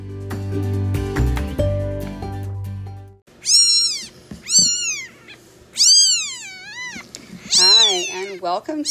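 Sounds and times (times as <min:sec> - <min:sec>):
music: 0:00.0 - 0:03.2
kittens meowing high-pitched and drawn-out: 0:03.4 - 0:08.8
speech: 0:08.4 - 0:08.8.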